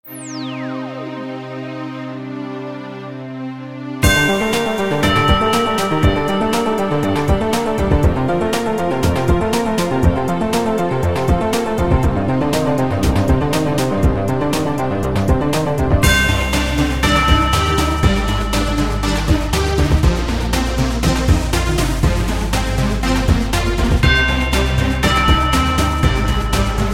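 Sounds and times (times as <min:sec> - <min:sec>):
pop beat ringtone: 0:04.0 - 0:26.9.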